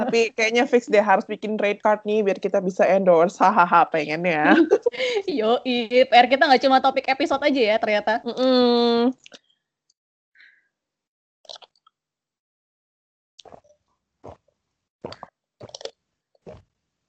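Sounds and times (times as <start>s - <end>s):
speech: 0.1s - 9.4s
laughter: 4.5s - 5.2s
sharp mouth clicks: 11.5s - 11.8s
wet gulps of someone drinking fizzy soda: 11.5s - 11.8s, 13.4s - 16.7s.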